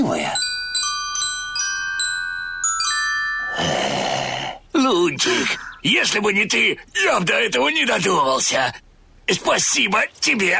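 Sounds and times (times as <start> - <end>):
small bells tied to spider-web threads ringing a melody: 0.0 - 3.8
speech: 5.2 - 10.5.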